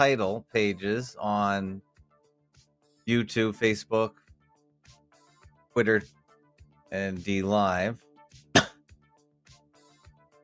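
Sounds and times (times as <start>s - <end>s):
speech: 0.0s - 1.9s, 3.1s - 4.2s, 5.8s - 6.2s, 6.9s - 8.0s
dry cough: 8.6s - 8.8s.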